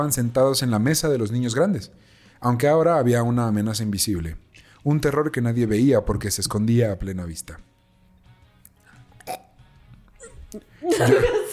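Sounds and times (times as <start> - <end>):
speech: 0.0 - 7.7, 10.5 - 11.4
man burping: 9.1 - 10.7
laughter: 10.2 - 11.5.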